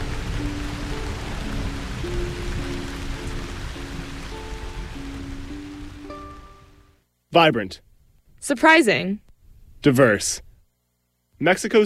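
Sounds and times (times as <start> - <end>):
dense rain pattering on a roof: 0.0 - 6.9
faint sustained melodic tones: 0.0 - 7.1
speech: 7.3 - 9.2, 9.8 - 10.5, 11.4 - 11.8.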